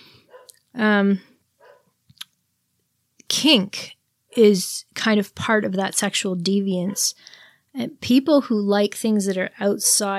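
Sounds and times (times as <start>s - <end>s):
dog barking in the background: 0.3s - 0.6s, 1.6s - 1.9s
speech: 0.8s - 1.3s, 3.4s - 10.1s.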